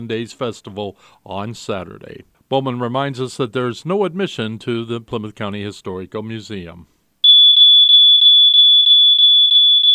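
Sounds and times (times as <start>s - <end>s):
speech: 0.0s - 6.9s
smoke detector high-pitched alarm tone: 7.2s - 9.9s.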